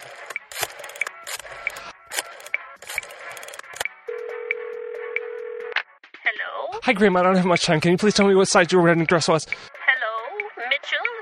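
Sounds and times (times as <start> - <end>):
rotary telephone dial on a landline: 0.0 - 3.9
steady low telephone tone: 3.4 - 5.8
speech: 6.8 - 9.7.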